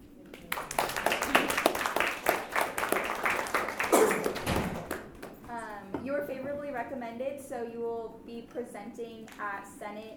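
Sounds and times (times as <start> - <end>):
small group clapping at a meeting: 0.3 - 5.6
speech: 7.0 - 10.1.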